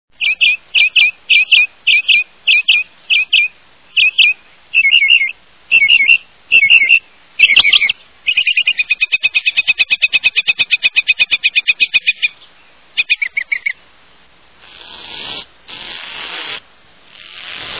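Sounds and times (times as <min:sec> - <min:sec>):
Northern Mockingbird singing: 0:00.2 - 0:13.8.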